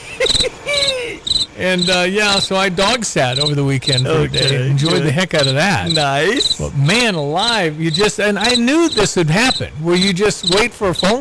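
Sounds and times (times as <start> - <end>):
crickets chirping outdoors: 0.0 - 11.1
laughter: 0.0 - 11.1
speech: 0.4 - 11.1.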